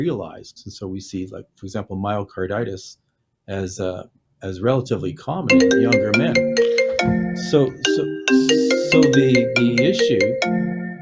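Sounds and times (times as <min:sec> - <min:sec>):
speech: 0:00.0 - 0:10.8
phone ringtone heard through a computer: 0:05.5 - 0:10.9.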